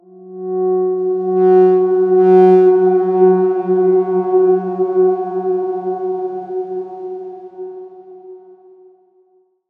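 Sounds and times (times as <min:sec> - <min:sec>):
F#3 tone: 0:01.0 - 0:08.1.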